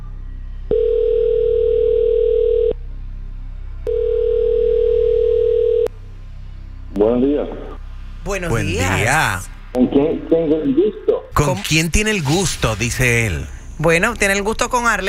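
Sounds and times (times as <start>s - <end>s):
telephone ringback tones: 0.7s - 2.7s, 3.9s - 5.9s
speech: 7.2s - 7.7s, 8.3s - 15.0s.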